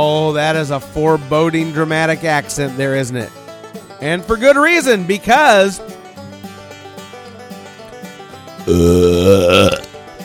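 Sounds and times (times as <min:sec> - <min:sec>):
speech: 0:00.1 - 0:03.4, 0:04.0 - 0:06.0, 0:08.7 - 0:09.8
loud drawn-out wet belch: 0:08.6 - 0:09.9.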